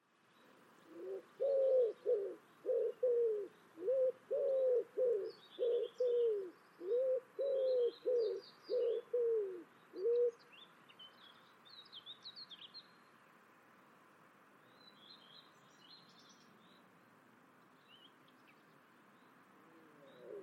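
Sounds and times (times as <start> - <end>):
bird giving low cooing notes: 0.8 - 10.4, 19.6 - 20.4.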